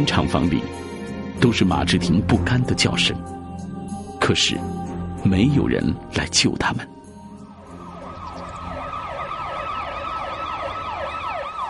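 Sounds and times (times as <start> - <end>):
speech: 0.0 - 3.4, 4.3 - 7.0
road noise rumble: 7.1 - 11.6
police car siren wailing: 7.5 - 11.6.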